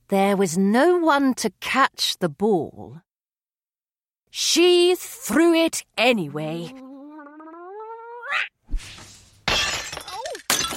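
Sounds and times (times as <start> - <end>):
speech: 0.1 - 3.1, 4.3 - 6.9, 8.3 - 9.0
cat-like yowling cry: 6.5 - 8.5
glass shattering: 9.4 - 10.7.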